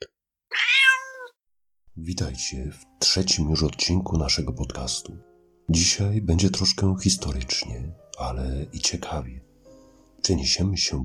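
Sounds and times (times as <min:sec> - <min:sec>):
cat meowing: 0:00.5 - 0:01.4
speech: 0:02.0 - 0:09.5, 0:10.2 - 0:11.0.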